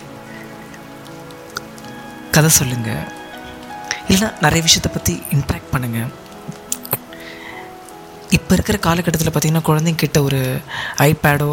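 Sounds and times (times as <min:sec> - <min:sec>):
sharp water drip: 0:00.0 - 0:08.4
light rain drizzling: 0:00.0 - 0:11.5
speech: 0:02.3 - 0:03.2, 0:04.1 - 0:06.2, 0:08.3 - 0:11.5.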